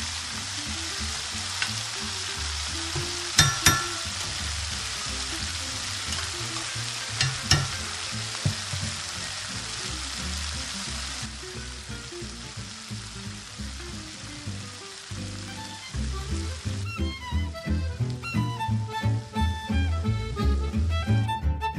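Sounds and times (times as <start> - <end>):
peppers sizzling in a hot frying pan: 0.0 - 21.6
stirring clatters: 2.9 - 4.4, 6.0 - 9.1.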